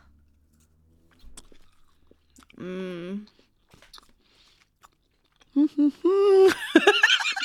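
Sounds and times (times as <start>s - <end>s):
biting and chewing an original dark chocolate peanut chew candy: 0.0s - 6.0s
person giving a loud appreciative hum: 2.6s - 3.3s, 5.6s - 6.6s
speech: 2.6s - 3.3s, 5.6s - 7.0s
laughter: 5.8s - 7.4s.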